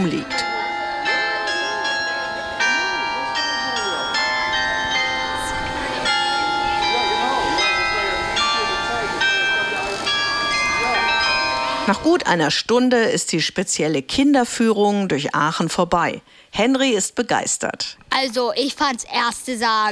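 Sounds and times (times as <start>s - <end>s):
speech: 0.0s - 0.4s, 11.9s - 19.9s
faint voices murmuring during a children's guided city tour: 0.0s - 12.0s
Aachen town hall carillon in Germany chiming a melody: 0.0s - 12.2s.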